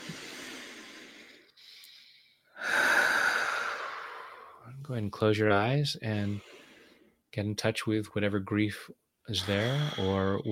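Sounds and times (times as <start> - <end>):
deep breath during a guided relaxation exercise: 0.0 - 4.7, 6.2 - 7.2, 9.4 - 10.5
speech: 4.9 - 6.5, 7.3 - 10.5.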